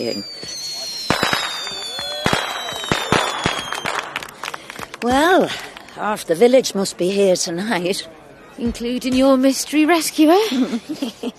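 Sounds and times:
speech: 0.0 - 0.6, 5.0 - 11.3
fireworks bangs and crackles at a village fireworks display at night: 0.0 - 5.4
laughter: 10.4 - 11.3.

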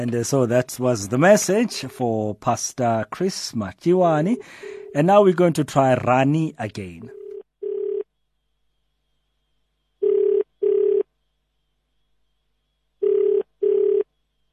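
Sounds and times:
speech: 0.0 - 7.2
phone line ringing out unanswered: 7.1 - 8.1, 10.0 - 11.1, 13.0 - 14.1.

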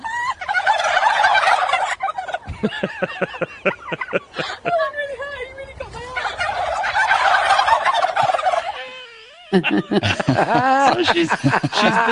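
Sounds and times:
laughter: 0.0 - 0.9, 2.2 - 4.9, 8.0 - 12.1
large flock of turkeys gobbling: 0.0 - 4.9, 5.9 - 9.1.

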